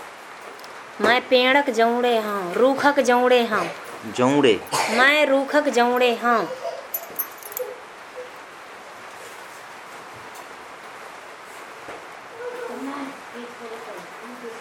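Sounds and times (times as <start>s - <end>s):
speech: 1.0s - 6.7s
dog whimpering and yipping: 6.4s - 8.4s.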